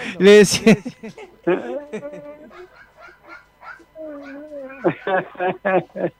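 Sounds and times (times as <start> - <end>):
laughter: 0.0 - 2.8, 4.7 - 6.1
speech: 0.2 - 2.8, 4.0 - 6.1
cats fighting and yowling outdoors: 1.6 - 5.2.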